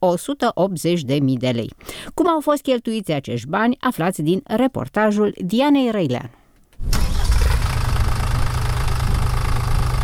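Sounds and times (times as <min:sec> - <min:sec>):
speech: 0:00.0 - 0:07.0
new tractor engine starting and idling at a vegetable greenhouse: 0:06.8 - 0:10.0.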